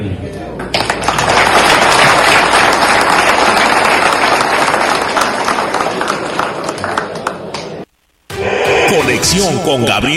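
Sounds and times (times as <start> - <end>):
assembly attendees applauding: 0.7 - 7.8
speech: 9.3 - 10.1.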